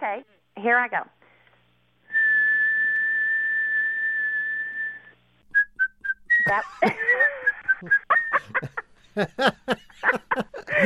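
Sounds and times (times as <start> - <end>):
speech: 0.0 - 1.2, 6.5 - 10.8
woman whistling to imitate a car's whistling noise: 2.1 - 8.4
laughter: 6.4 - 10.8.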